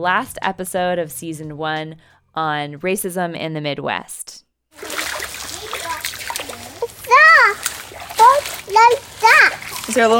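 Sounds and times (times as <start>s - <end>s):
speech: 0.0s - 4.4s, 8.7s - 10.1s
feet stomping through a shallow creek in summer: 4.8s - 10.1s.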